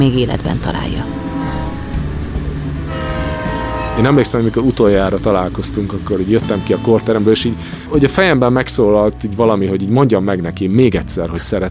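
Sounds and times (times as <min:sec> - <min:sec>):
speech: 0:00.0 - 0:01.2, 0:04.0 - 0:11.6
train rumbling: 0:00.0 - 0:09.3
train horn droning blast: 0:00.6 - 0:07.3.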